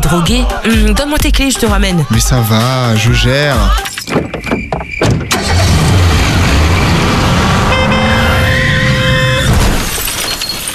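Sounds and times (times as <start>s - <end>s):
speech: 0.1s - 4.3s
crunching metal: 3.9s - 7.7s, 8.4s - 10.7s
sharp knocks: 4.0s - 5.3s
head-on car crash with an oncoming car: 4.1s - 10.7s
car horn blaring: 7.4s - 9.6s
breaking glass: 9.4s - 10.7s.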